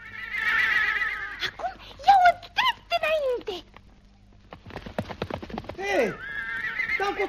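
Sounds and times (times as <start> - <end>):
horse whinnying: 0.0 - 1.6, 5.8 - 7.2
horse hooves clip-clopping at a gallop: 2.0 - 7.2.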